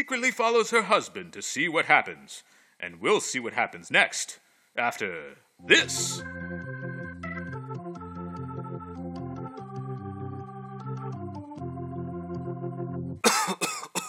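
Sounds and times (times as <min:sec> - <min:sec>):
speech: 0:00.0 - 0:06.6
organ-like music in steady chords: 0:05.6 - 0:13.8
short loud cough: 0:13.2 - 0:14.0.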